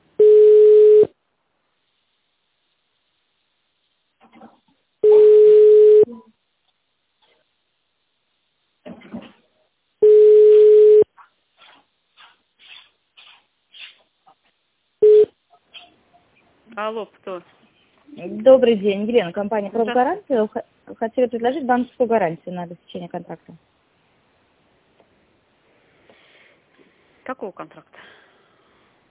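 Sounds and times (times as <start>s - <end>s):
telephone ringback tone: 0.2s - 1.1s, 5.0s - 6.1s, 10.0s - 11.0s, 15.0s - 15.3s
speech: 16.8s - 23.7s, 27.3s - 28.2s.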